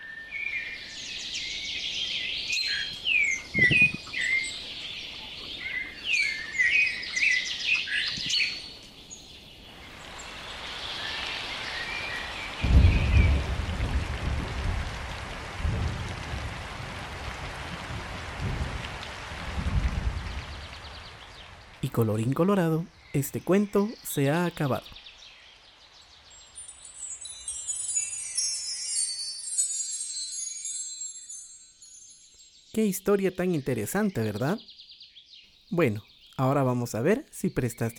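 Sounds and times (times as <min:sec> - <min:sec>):
mockingbird singing: 0:00.2 - 0:09.8, 0:21.8 - 0:25.3, 0:32.7 - 0:37.9
steady rain falling: 0:00.6 - 0:30.3
thunder rumbling: 0:12.2 - 0:21.9
speech: 0:21.9 - 0:25.0, 0:32.8 - 0:34.8, 0:35.7 - 0:37.9.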